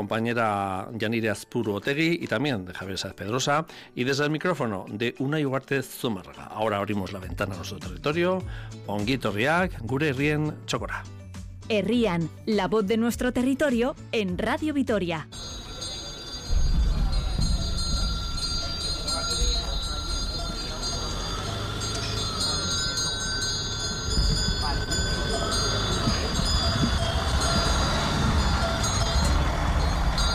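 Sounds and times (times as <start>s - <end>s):
speech: 0.0s - 15.6s
busy outdoor murmur: 15.4s - 30.3s
livestock cowbells clanking at a fair: 15.4s - 30.3s
low rumble of passing cars: 15.4s - 30.3s.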